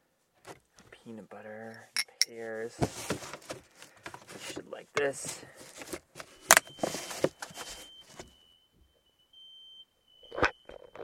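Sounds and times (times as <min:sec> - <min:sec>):
speech: 0:01.0 - 0:06.0
rustling and clattering: 0:02.0 - 0:08.3
fire alarm high-pitched tone: 0:06.3 - 0:11.0.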